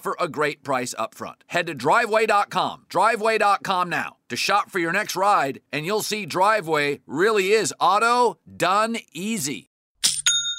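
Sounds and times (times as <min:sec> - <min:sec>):
speech: 0:00.0 - 0:09.7
online store sale notification chime: 0:10.0 - 0:10.5.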